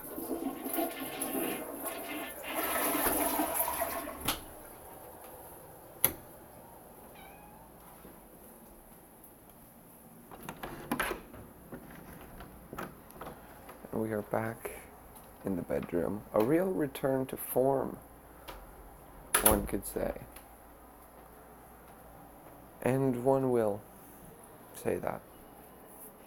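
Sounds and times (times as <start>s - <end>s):
toilet flushing and refilling: 0.0s - 5.2s
speech: 14.1s - 14.8s, 15.4s - 18.1s, 19.4s - 20.3s, 22.8s - 23.9s, 24.8s - 25.3s.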